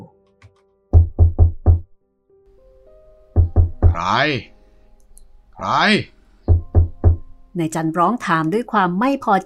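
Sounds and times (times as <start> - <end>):
firm knocking on a wooden door: 1.0 - 1.9, 3.4 - 4.1, 6.5 - 7.3
speech: 4.0 - 4.6, 5.6 - 6.2, 7.6 - 9.4.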